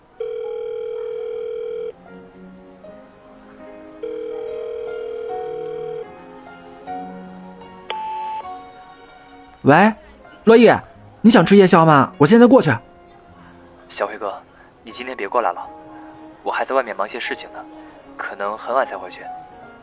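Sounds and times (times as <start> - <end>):
ringing tone of an outgoing telephone call: 0.0 - 2.0, 4.0 - 6.1, 7.9 - 8.6
speech: 9.6 - 12.9, 13.9 - 15.8, 16.4 - 19.4.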